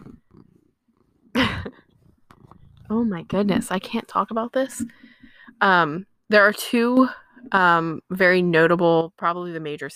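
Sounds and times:
cat purring: 0:00.0 - 0:05.0
speech: 0:02.9 - 0:05.0, 0:05.6 - 0:09.9.

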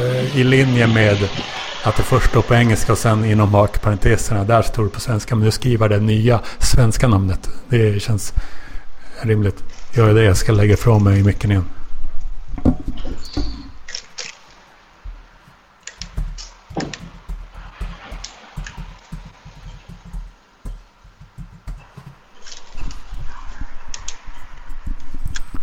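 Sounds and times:
speech: 0:00.3 - 0:08.6, 0:09.2 - 0:11.8
typing on a keyboard: 0:15.8 - 0:23.0.

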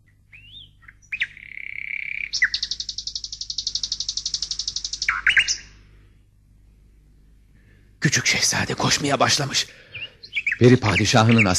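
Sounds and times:
golden nightingale singing mournfully: 0:00.0 - 0:05.8, 0:08.9 - 0:11.5
speech: 0:08.0 - 0:09.9, 0:10.6 - 0:11.5.

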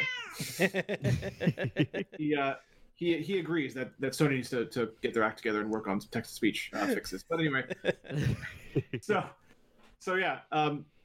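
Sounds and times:
cat meowing: 0:00.0 - 0:00.4
man laughing: 0:00.4 - 0:02.4, 0:06.8 - 0:09.3
speech: 0:00.5 - 0:09.4, 0:10.0 - 0:11.0.

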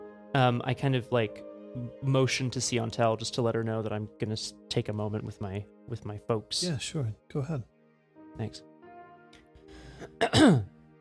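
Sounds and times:
speech: 0:00.4 - 0:07.7, 0:08.4 - 0:08.7, 0:10.0 - 0:10.8
person clearing throat: 0:10.0 - 0:10.7.

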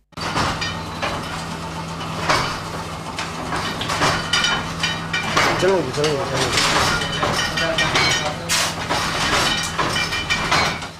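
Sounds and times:
letterpress printing machine printing typeset pages: 0:00.2 - 0:10.9.

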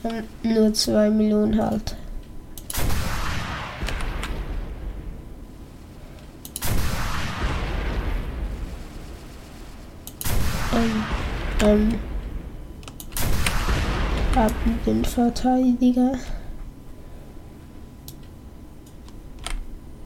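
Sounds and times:
speech: 0:00.0 - 0:02.0, 0:14.4 - 0:16.4
heavy booming video game gunshots: 0:02.7 - 0:04.8, 0:06.5 - 0:12.2, 0:13.1 - 0:14.9.

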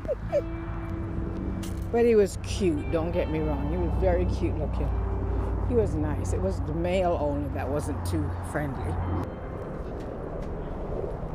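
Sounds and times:
airplane flying overhead: 0:00.0 - 0:11.3
speech: 0:01.9 - 0:05.1, 0:05.7 - 0:09.4.

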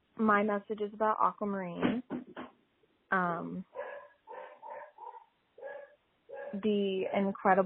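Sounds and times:
speech: 0:00.2 - 0:02.4, 0:03.1 - 0:03.8, 0:06.5 - 0:07.6
dog barking indoors at a package delivery: 0:03.7 - 0:07.3.

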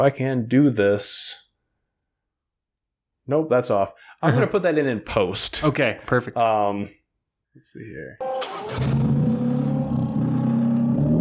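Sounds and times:
speech: 0:00.0 - 0:01.4, 0:03.3 - 0:07.0, 0:07.6 - 0:09.2
hydrogen-powered Corolla race car engine revving: 0:08.4 - 0:11.1.

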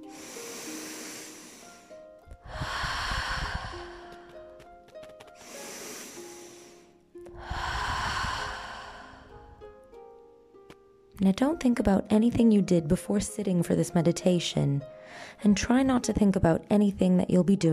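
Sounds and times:
deep slow breathing in through the nose and out through the mouth: 0:00.0 - 0:04.5, 0:05.4 - 0:09.6
speech: 0:11.2 - 0:17.7.

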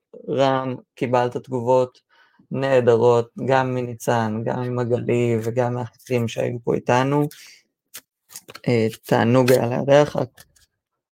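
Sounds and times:
speech: 0:00.3 - 0:07.6, 0:08.3 - 0:10.5
deck of cards being shuffled for drawing the daily card: 0:08.0 - 0:10.7.

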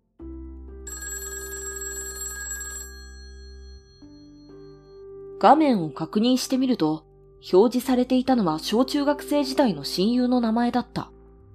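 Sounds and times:
mobile phone ringtone with bright electronic chime: 0:00.9 - 0:05.0
speech: 0:05.4 - 0:11.1.

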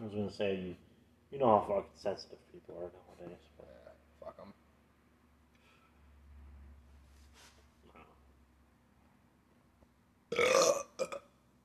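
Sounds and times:
speech: 0:00.1 - 0:04.6
person burping: 0:10.3 - 0:11.3.

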